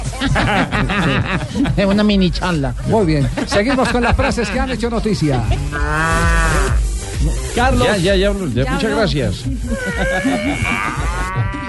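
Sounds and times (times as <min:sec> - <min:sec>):
laughter: 0:00.0 - 0:06.1, 0:09.4 - 0:11.6
speech: 0:00.2 - 0:11.2
cow mooing loudly: 0:05.7 - 0:06.8, 0:10.0 - 0:11.6.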